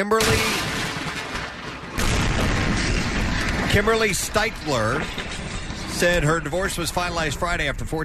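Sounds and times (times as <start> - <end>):
speech: 0.0 - 0.6, 3.7 - 8.0
explosion destroying a wedding dress in Texas: 0.2 - 8.0
long rolling rumble: 0.5 - 8.0.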